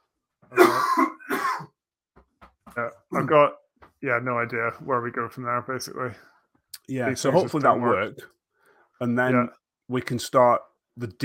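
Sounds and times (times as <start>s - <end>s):
rough raspy coughing with throat clearing: 0.5s - 1.8s
speech: 3.2s - 6.3s, 6.9s - 8.4s, 9.0s - 11.2s.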